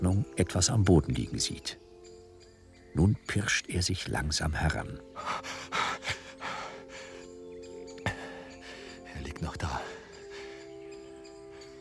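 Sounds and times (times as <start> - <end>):
speech: 0.1 - 1.8, 3.0 - 5.8
man panting heavily after running: 5.1 - 7.4, 8.0 - 9.1, 9.8 - 11.7.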